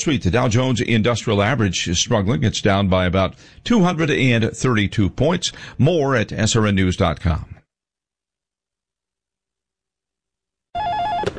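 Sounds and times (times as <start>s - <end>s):
speech: 0.0s - 7.6s
telephone ringing with electronic trill: 10.8s - 11.3s.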